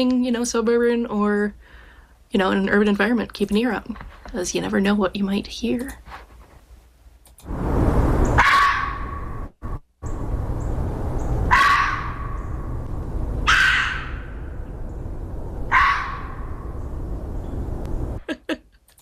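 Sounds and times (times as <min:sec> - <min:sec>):
speech: 0:00.0 - 0:06.3, 0:07.4 - 0:07.8
steady background noise: 0:02.2 - 0:18.9
red fox hoarse screams calling for mates: 0:08.4 - 0:09.4, 0:11.5 - 0:12.6, 0:13.4 - 0:14.6, 0:15.7 - 0:16.7.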